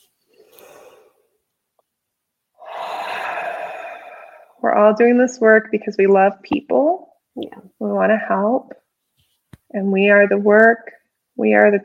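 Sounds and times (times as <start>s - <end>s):
group taking a collective deep breath: 0.3s - 1.3s, 2.6s - 4.6s
speech: 4.6s - 8.8s, 9.7s - 11.8s.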